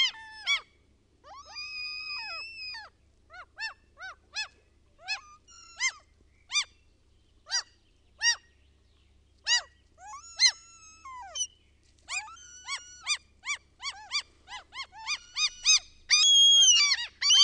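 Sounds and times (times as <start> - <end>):
Common gull yelping and mewing calls: 0.0 - 0.7, 1.3 - 6.7, 9.5 - 11.5, 12.1 - 17.4.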